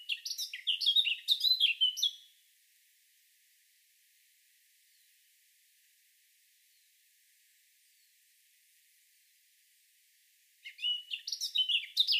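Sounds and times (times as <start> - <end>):
Eurasian blackcap Sylvia atricapilla singing: 0.0 - 2.4, 10.6 - 12.1.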